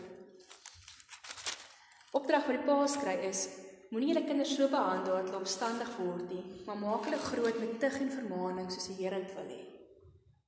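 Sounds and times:
Bible pages being handled and turned: 0.3s - 2.2s, 7.0s - 7.7s
speech: 2.3s - 9.8s.

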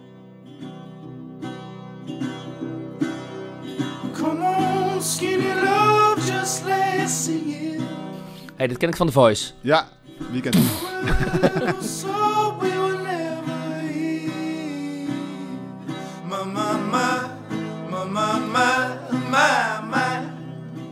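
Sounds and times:
strummed acoustic guitar chords in a lo-fi indie folk song: 0.0s - 20.8s
person singing a lo-fi indie folk song: 4.2s - 8.4s, 10.2s - 20.6s
speech: 8.6s - 12.8s
laughter: 10.2s - 13.2s.

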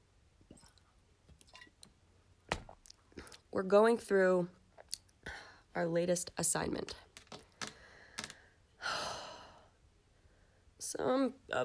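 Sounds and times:
person sipping water: 0.5s - 1.9s
speech: 3.6s - 4.6s, 5.8s - 7.0s, 11.0s - 11.6s.

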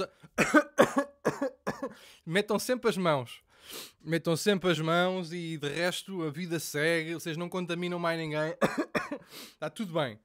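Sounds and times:
speech: 0.0s - 1.1s, 2.3s - 10.2s
person coughing: 0.0s - 2.0s, 8.6s - 9.3s.

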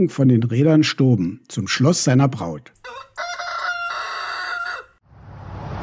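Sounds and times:
speech: 0.0s - 3.2s
rooster crowing: 2.8s - 5.0s.

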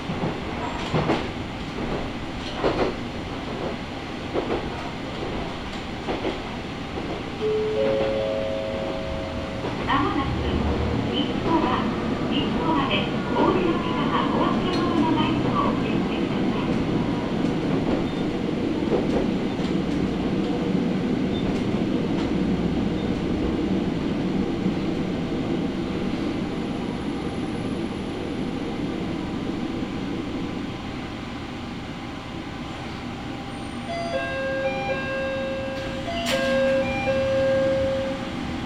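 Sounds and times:
low rumble inside a local train car: 0.0s - 38.6s.

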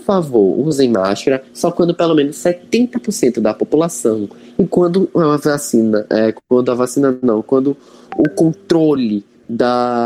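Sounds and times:
speech: 0.0s - 10.0s
messaging app notification tone on phone: 8.1s - 9.0s.

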